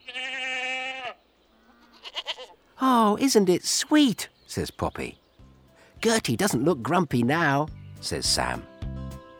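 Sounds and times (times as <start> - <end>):
baby goat bleating in a goat pen: 0.0 - 2.6
speech: 3.0 - 5.2, 6.0 - 8.7.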